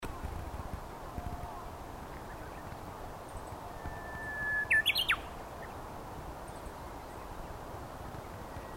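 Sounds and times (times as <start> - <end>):
faint steady hiss: 0.0 - 8.7
Japanese bush warbler singing a held whistled note with a looping flourish: 1.4 - 8.7.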